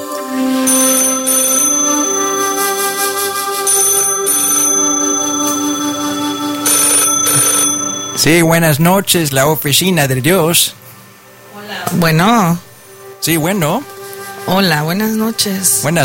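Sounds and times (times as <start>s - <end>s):
telephone ringtone during an outgoing call: 0.3s - 9.1s
speech: 8.3s - 10.8s, 12.0s - 16.0s.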